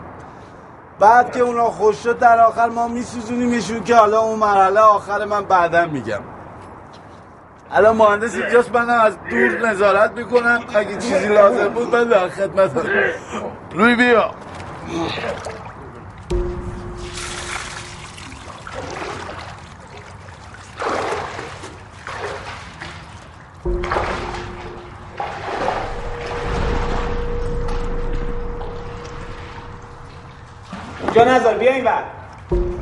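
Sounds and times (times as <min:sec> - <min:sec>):
speech: 0:01.0 - 0:06.3, 0:07.7 - 0:15.6, 0:31.2 - 0:32.2
water pouring and splashing: 0:14.4 - 0:31.7.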